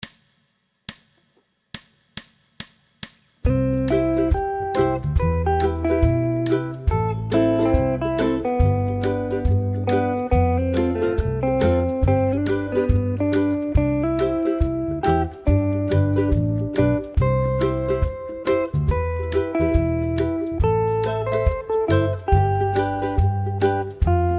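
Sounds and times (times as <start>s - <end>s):
ukulele solo: 3.5s - 24.3s.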